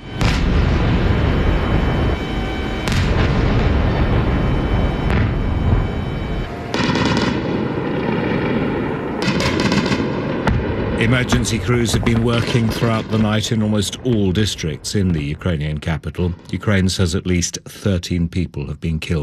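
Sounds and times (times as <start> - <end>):
explosions during a drone and missile attack over Kyiv: 0.0 - 16.8
anti-aircraft fire during a drone and missile attack over Kyiv: 0.0 - 17.9
speech: 11.0 - 19.2.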